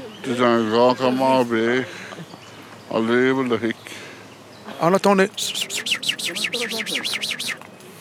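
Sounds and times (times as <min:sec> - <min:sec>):
speech: 0:00.2 - 0:02.0, 0:02.9 - 0:04.0, 0:04.8 - 0:07.6
birds chirping with bright high notes: 0:05.0 - 0:07.6
brief voiced sound: 0:05.3 - 0:07.6.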